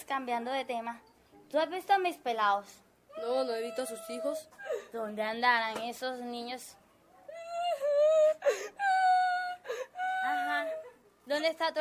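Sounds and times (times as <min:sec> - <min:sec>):
speech: 0:00.1 - 0:06.8, 0:11.3 - 0:11.7
child wailing: 0:03.1 - 0:05.2, 0:07.3 - 0:11.0.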